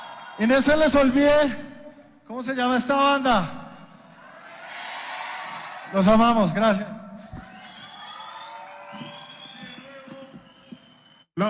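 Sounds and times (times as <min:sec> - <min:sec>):
live crowd cheering and applauding: 0:00.0 - 0:01.0, 0:04.1 - 0:11.3
speech: 0:00.4 - 0:01.7, 0:02.3 - 0:03.6, 0:05.9 - 0:07.0
sustained whistling tones: 0:07.2 - 0:11.4.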